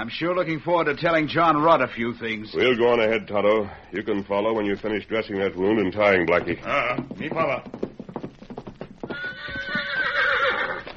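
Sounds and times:
speech: 0.0 - 7.8
horse hooves clopping: 5.3 - 10.9
horse whinnying: 9.1 - 10.9.

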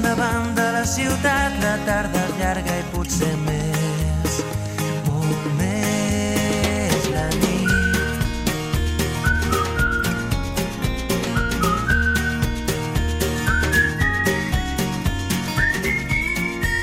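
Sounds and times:
steady rhythmic musical backing with bass and percussion: 0.0 - 16.8
person whistling a bright repeating melody: 7.4 - 8.4, 9.1 - 10.4, 11.2 - 14.8, 15.4 - 16.8.

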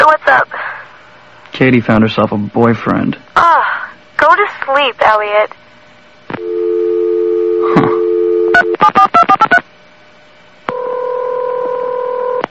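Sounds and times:
speech: 0.1 - 0.6, 1.6 - 5.6
landline dial tone after phone hung up: 6.4 - 9.6, 10.7 - 12.4.

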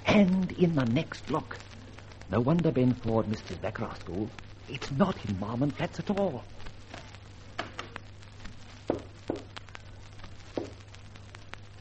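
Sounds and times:
speech: 0.2 - 1.7, 2.3 - 7.0
footsteps approaching from inside behind a door: 6.8 - 10.9.

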